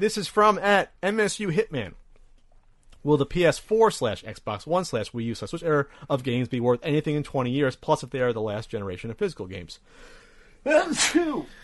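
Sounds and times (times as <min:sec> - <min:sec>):
speech: 0:00.0 - 0:02.0, 0:03.0 - 0:11.6
loud sneeze: 0:10.7 - 0:11.5.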